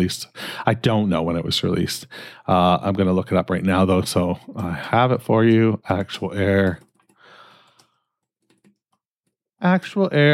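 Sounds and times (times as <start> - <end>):
speech: 0.0 - 6.9, 9.6 - 10.3
typing on a computer keyboard: 6.4 - 9.0.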